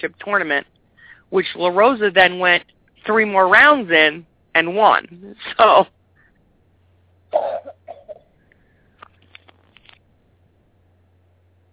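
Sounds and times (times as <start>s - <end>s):
speech: 0.0s - 6.0s
sharp cough: 7.3s - 8.3s.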